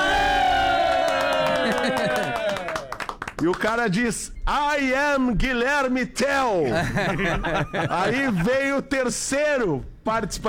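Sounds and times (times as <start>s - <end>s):
large audience cheering and shouting: 0.0s - 3.1s
scattered applause: 0.8s - 3.9s
laughter: 1.2s - 2.6s, 6.6s - 8.6s
speech: 3.4s - 10.4s.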